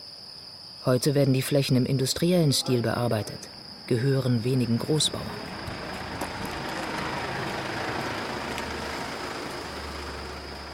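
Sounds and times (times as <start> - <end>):
speech: 0.8 - 5.6
car engine and road rumble pulling into a farmyard driveway in Soria: 4.5 - 10.7.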